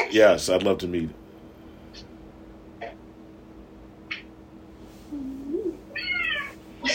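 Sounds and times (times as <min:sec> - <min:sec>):
speech: 0:00.1 - 0:01.2
female cat meowing while lying down: 0:05.9 - 0:06.6.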